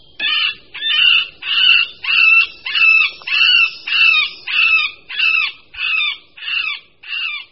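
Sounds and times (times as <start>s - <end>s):
male middle spotted woodpecker wailing spring call: 0.2s - 7.4s.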